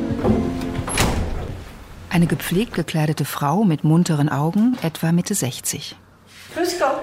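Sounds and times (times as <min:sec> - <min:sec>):
metal container door being pulled open: 0:00.2 - 0:02.0
speech: 0:02.2 - 0:07.0.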